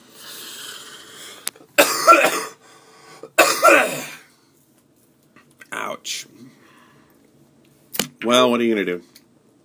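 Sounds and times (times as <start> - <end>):
quieter breathy stretch: 0.1 - 1.5, 2.6 - 3.3, 6.4 - 7.2
harsh wet coughs: 1.8 - 2.6, 3.2 - 4.3
speech: 2.1 - 2.5, 8.3 - 9.1.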